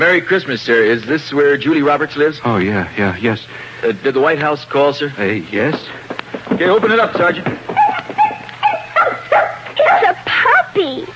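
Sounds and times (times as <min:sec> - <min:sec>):
speech: 0:00.0 - 0:07.8
faint steady hum: 0:00.0 - 0:11.1
puppy yipping and whimpering: 0:07.7 - 0:10.2.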